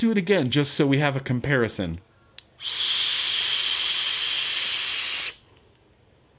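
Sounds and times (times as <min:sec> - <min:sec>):
speech: 0:00.0 - 0:03.1
airy inhale through a vape with wide-open airflow: 0:02.6 - 0:05.4.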